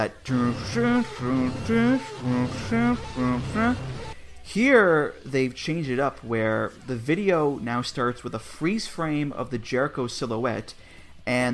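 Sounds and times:
speech: 0.0s - 11.5s
voice imitating countdown clock sound effect from entrance intro: 0.2s - 4.2s.

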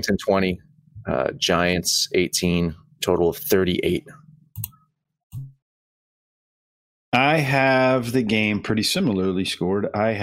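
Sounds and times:
speech: 0.0s - 4.2s, 7.1s - 10.2s
computer mouse clicks: 4.5s - 4.8s.

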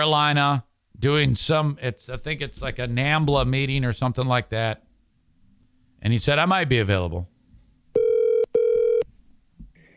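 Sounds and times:
speech: 0.0s - 4.8s, 6.0s - 7.3s
quiet hiss: 0.0s - 9.9s
telephone ringing on the line: 8.0s - 9.0s.

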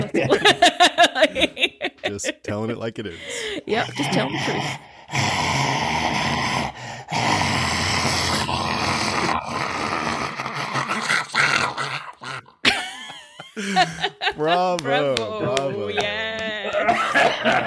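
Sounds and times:
laughter: 0.0s - 4.6s, 12.7s - 17.6s
speech: 2.2s - 6.2s, 13.6s - 16.2s
person imitating a zombie with a raspy gravelly growl: 3.8s - 12.6s.

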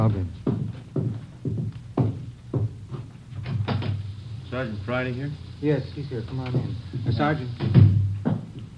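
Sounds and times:
low hum: 0.0s - 8.7s
sharp knocks or clatters at the back door: 0.4s - 2.8s, 3.4s - 4.0s, 6.5s - 8.6s
people talking: 4.5s - 7.9s.

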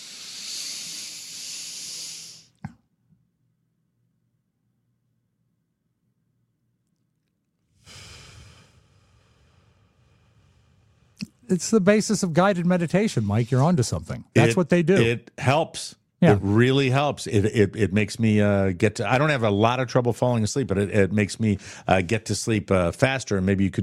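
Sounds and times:
long hissing breath during a slow breathing exercise: 0.0s - 2.6s, 7.7s - 11.5s, 21.6s - 21.9s
speech: 11.5s - 23.8s.

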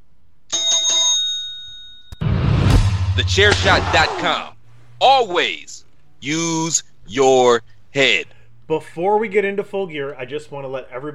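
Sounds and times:
bright metallic bell being struck: 0.5s - 2.2s
burst of broadband noise: 2.7s - 4.4s
speech: 3.2s - 11.1s.

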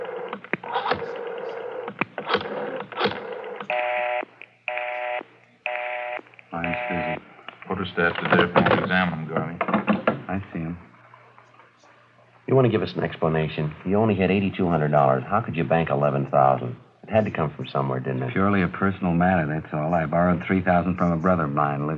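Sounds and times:
buzzing keypad tones of a telephone number being dialed: 0.0s - 7.2s
speech: 7.8s - 9.7s, 10.3s - 10.9s, 12.5s - 21.9s.

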